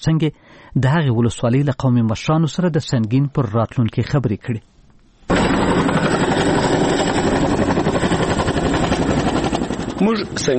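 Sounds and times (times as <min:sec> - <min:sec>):
speech: 0:00.0 - 0:04.7, 0:10.0 - 0:10.5
American Chinook helicopter in flight toward a district in northern Helmand: 0:05.3 - 0:10.5.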